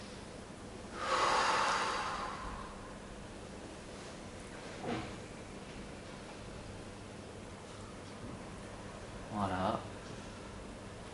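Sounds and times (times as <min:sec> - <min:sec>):
deep breathing during guided seated relaxation: 0:00.9 - 0:03.3.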